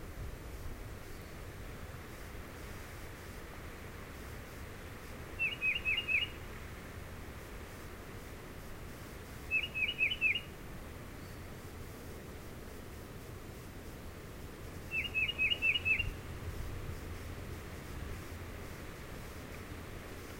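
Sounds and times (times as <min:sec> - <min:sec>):
quiet hiss: 0:00.0 - 0:20.3
Tufted titmouse singing downslurred whistles: 0:05.4 - 0:06.4, 0:09.5 - 0:10.5, 0:14.9 - 0:16.2.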